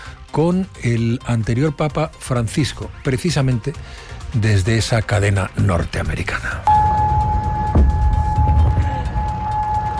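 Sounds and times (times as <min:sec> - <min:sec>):
speech: 0:00.4 - 0:06.7
steady air raid warning siren: 0:06.7 - 0:09.9.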